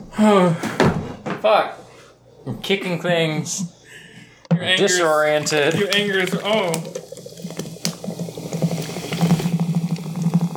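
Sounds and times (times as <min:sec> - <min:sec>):
speech: 0:00.2 - 0:00.7, 0:01.4 - 0:01.8, 0:02.4 - 0:03.8, 0:04.6 - 0:07.0
liquid pouring and foaming: 0:04.8 - 0:10.5.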